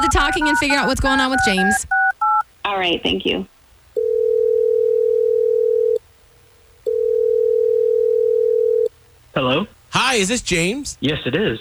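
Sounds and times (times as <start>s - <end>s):
telephone line ringback tone: 0.0s - 2.4s, 4.0s - 6.0s, 6.9s - 8.9s
speech: 0.1s - 2.0s, 2.7s - 3.5s, 9.4s - 11.5s.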